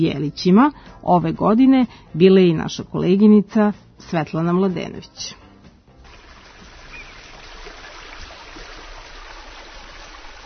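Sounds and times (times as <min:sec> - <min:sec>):
speech: 0:00.0 - 0:05.4
stream water rushing at Banja Vrućica in Republika Srpska: 0:06.0 - 0:10.4.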